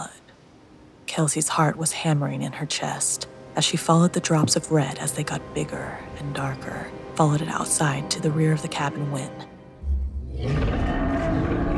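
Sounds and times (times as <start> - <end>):
speech: 1.2 - 9.5
animal roaring: 10.1 - 11.7.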